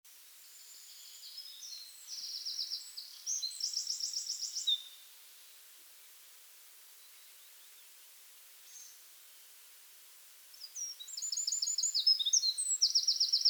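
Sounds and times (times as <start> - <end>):
Eurasian wren Troglodytes troglodytes song: 0.5 - 5.0, 10.5 - 13.4.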